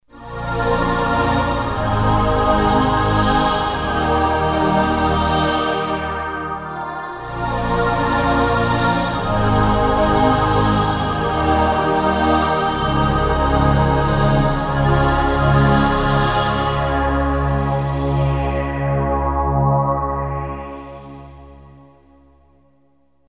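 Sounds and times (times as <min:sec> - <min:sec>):
choir pad on a Yamaha SY99 synthesizer: 0:00.1 - 0:21.2.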